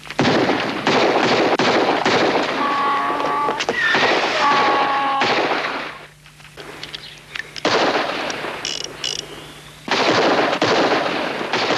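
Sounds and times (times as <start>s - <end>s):
rapid gunshots: 0.2s - 2.7s, 3.8s - 6.0s, 7.6s - 8.6s, 9.9s - 11.7s.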